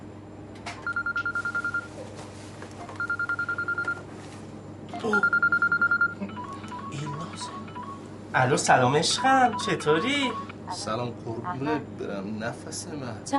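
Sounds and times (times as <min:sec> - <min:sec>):
telephone ringing tone of trilling beeps: 0:00.8 - 0:01.9, 0:02.9 - 0:04.0, 0:05.0 - 0:08.2, 0:09.1 - 0:10.6
speech: 0:05.0 - 0:05.4, 0:08.4 - 0:13.3.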